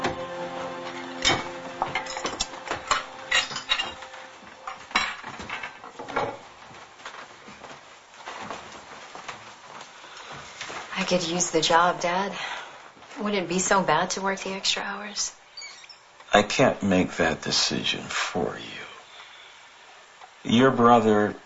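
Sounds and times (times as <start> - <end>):
dishes and cutlery clattering while washing up: 1.2 - 4.1, 4.7 - 6.4
speech: 11.1 - 12.6, 13.2 - 15.4, 16.4 - 18.8, 20.4 - 21.4.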